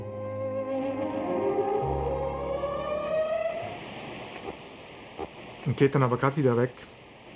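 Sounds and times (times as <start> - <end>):
sustained string melody: 0.0 - 4.1
radio static picked up on a tape recorder: 2.8 - 7.3
speech: 5.7 - 7.0.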